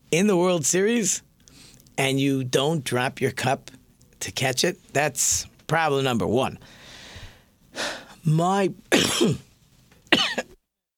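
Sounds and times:
speech: 0.1 - 1.3, 2.0 - 6.8, 7.8 - 9.5
voiced, strained breath: 6.6 - 8.2
harsh coughs: 8.9 - 9.5, 10.1 - 10.6.

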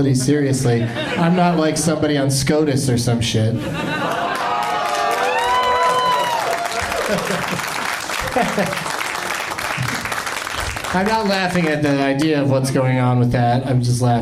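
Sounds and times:
speech: 0.0 - 4.2, 8.4 - 8.9, 10.9 - 14.2
laughter: 0.1 - 2.0, 3.5 - 10.1
large audience applause: 4.0 - 12.2
whoops and cheering voices: 4.3 - 7.6.

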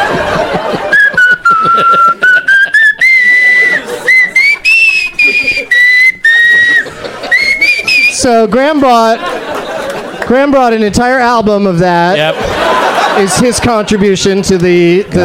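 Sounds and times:
person chuckling: 0.0 - 7.9
person whistling a slow wavering tune: 0.9 - 8.2
speech: 8.2 - 9.3, 10.3 - 12.6, 13.2 - 15.2.

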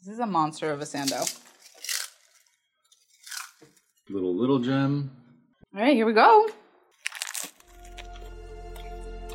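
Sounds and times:
speech: 0.1 - 1.5, 4.1 - 6.6
potato chips crushed by hand onto a sandwich: 0.9 - 4.0, 7.0 - 8.4.

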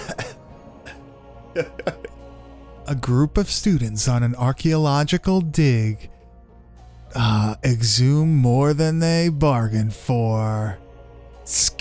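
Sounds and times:
person clearing throat: 0.0 - 1.0, 1.6 - 2.2
laughter: 0.0 - 2.2
speech: 1.6 - 2.0, 2.9 - 6.1, 7.1 - 10.8, 11.5 - 11.7.

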